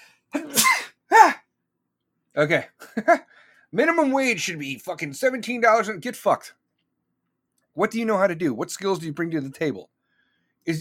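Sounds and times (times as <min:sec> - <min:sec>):
person sneezing: 0:00.3 - 0:01.5
speech: 0:02.4 - 0:06.6, 0:07.8 - 0:10.0.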